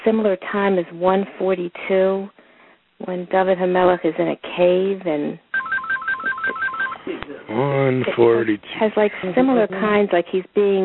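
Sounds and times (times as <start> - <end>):
speech: 0.0 - 2.4, 3.0 - 5.4, 7.5 - 10.8
phone ringtone of short electronic beeps alternating between two pitches: 5.5 - 7.1.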